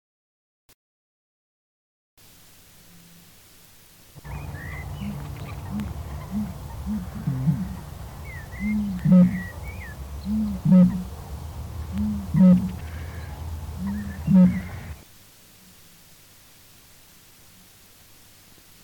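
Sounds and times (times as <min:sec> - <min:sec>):
bittern: 0:04.2 - 0:09.6, 0:10.2 - 0:11.1, 0:11.9 - 0:15.0.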